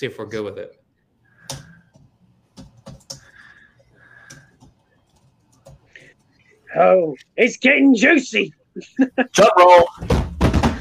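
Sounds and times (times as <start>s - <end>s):
speech: 0.0s - 0.8s, 6.8s - 10.2s
typing on a computer keyboard: 1.4s - 6.4s.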